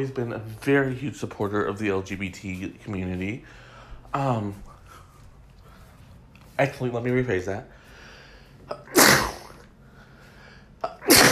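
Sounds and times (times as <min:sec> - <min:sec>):
speech: 0:00.0 - 0:04.7, 0:06.6 - 0:07.8
person sneezing: 0:08.7 - 0:09.7, 0:10.8 - 0:11.3.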